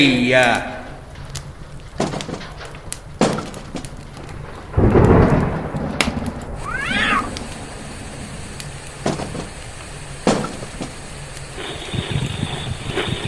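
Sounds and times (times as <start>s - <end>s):
speech: 0.0s - 0.8s
thunder rumbling: 0.0s - 13.2s
sharp thunder cracks: 1.9s - 13.2s
cat meowing: 6.6s - 7.4s.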